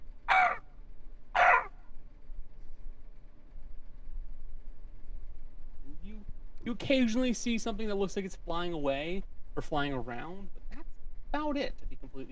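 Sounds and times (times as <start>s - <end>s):
low rumble: 0.0s - 12.2s
crow cawing: 0.3s - 0.7s, 1.4s - 1.8s
speech: 6.7s - 10.6s, 11.3s - 12.2s.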